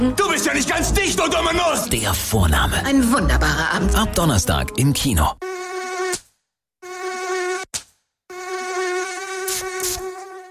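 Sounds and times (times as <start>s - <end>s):
speech: 0.0s - 5.5s
mosquito whining high-pitched buzz: 5.4s - 6.2s, 6.8s - 10.5s.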